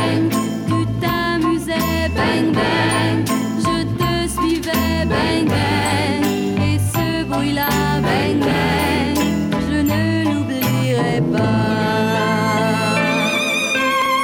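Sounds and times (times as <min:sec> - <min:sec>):
French pop song with full band arrangement and melodic vocals: 0:00.0 - 0:14.1.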